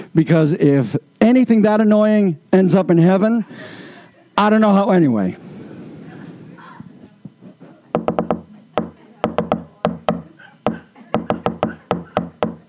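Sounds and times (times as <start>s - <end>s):
speech: 0.2s - 3.8s, 4.4s - 5.5s
bird pecking hard and fast on wood: 8.0s - 12.6s.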